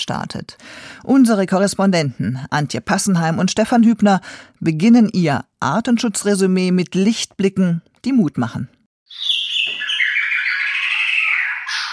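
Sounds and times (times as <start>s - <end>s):
speech: 0.1s - 9.4s
Maratua shama warbling song: 9.1s - 11.9s.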